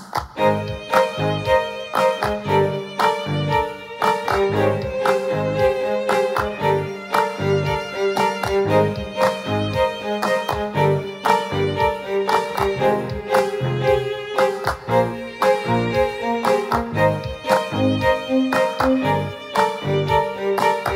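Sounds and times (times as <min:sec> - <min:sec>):
violins playing a prayer: 0:00.4 - 0:20.9.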